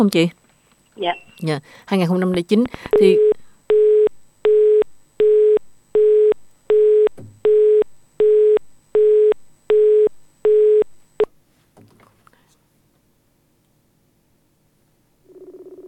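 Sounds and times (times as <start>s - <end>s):
speech: 0.0s - 0.4s, 1.0s - 3.3s
telephone busy signal after a call was cut off: 2.9s - 10.9s.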